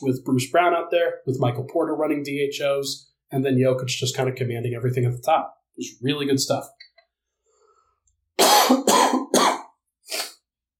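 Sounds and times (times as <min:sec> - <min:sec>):
speech: 0:00.0 - 0:06.8
loud harsh coughs: 0:08.4 - 0:09.8.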